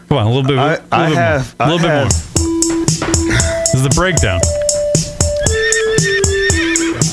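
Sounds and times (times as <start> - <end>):
speech: 0.1 - 2.4, 3.7 - 4.6
musical track with loud percussive hits and low sustained tone: 2.0 - 7.1
wavering high-pitched horse whinny: 5.4 - 7.1.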